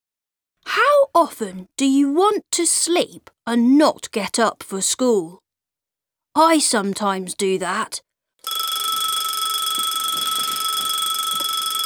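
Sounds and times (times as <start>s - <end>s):
speech: 1.1s - 5.4s, 6.4s - 8.6s
electronic alarm clock ringing: 8.4s - 11.8s.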